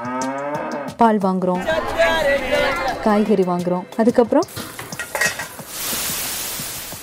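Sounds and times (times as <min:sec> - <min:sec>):
speech: 0:01.0 - 0:04.7
frying food sizzling in a pan: 0:04.4 - 0:07.0
metal utensils clinking and scraping in a pan: 0:04.5 - 0:05.8.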